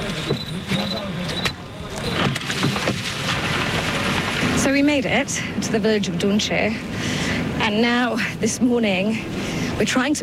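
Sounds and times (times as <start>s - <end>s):
truck body creaking, clunking and rattling over rough ground: 0.0s - 4.8s
aid truck engine rumbling on muddy road: 0.0s - 10.2s
speech: 4.7s - 7.1s, 7.7s - 10.2s.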